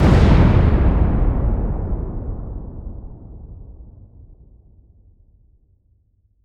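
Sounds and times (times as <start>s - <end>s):
large deep dynamite demolition explosion blast: 0.0s - 5.0s.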